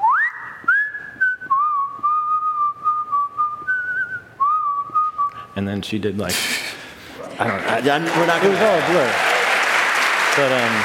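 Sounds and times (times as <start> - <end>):
person whistling a slow melody: 0.0 - 5.4
speech: 5.6 - 6.7, 7.4 - 9.4, 10.4 - 10.8.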